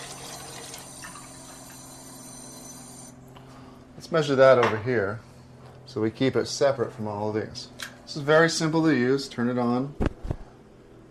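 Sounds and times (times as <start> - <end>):
unfiltered tap water pouring into a container: 0.0 - 2.0
faint steady hum: 0.0 - 11.0
speech: 4.0 - 5.3, 6.0 - 10.1.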